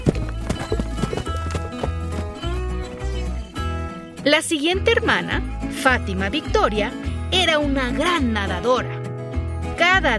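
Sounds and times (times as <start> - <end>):
horse hooves clip-clopping on a ridden walk through a forest: 0.0 - 3.5
speech: 4.2 - 9.0, 9.8 - 10.1.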